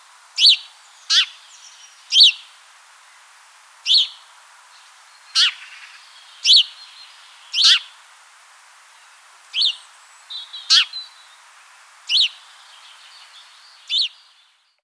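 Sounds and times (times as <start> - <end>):
soft steady background hiss: 0.0 - 14.8
house sparrow Passer domesticus giving harsh chirps: 0.4 - 2.5, 3.9 - 4.2, 5.2 - 7.9, 9.5 - 11.4, 12.1 - 14.7.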